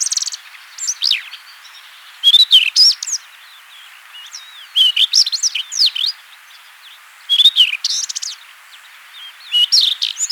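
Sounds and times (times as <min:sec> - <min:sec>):
Rufous-tailed Scrub Robin song: 0:00.0 - 0:06.2, 0:06.9 - 0:10.3.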